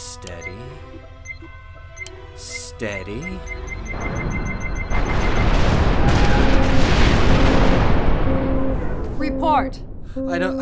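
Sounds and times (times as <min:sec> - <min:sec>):
speech: 0:00.2 - 0:01.6, 0:02.8 - 0:04.5, 0:09.4 - 0:10.6
ship's guns firing a shot: 0:04.0 - 0:09.2.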